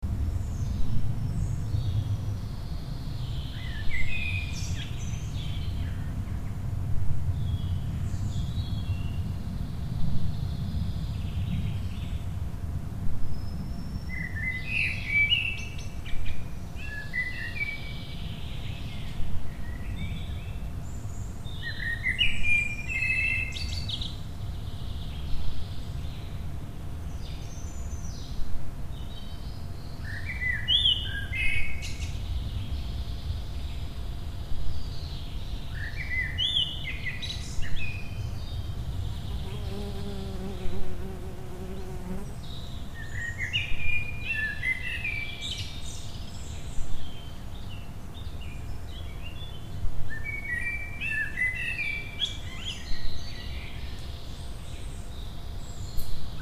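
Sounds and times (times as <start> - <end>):
mixed deciduous forest ambience: 0.0 - 56.3.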